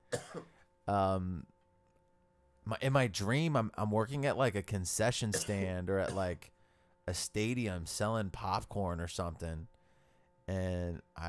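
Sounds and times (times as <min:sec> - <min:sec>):
person coughing: 0:00.1 - 0:00.6, 0:05.3 - 0:06.4
speech: 0:00.1 - 0:01.5, 0:02.7 - 0:09.8, 0:10.5 - 0:11.2.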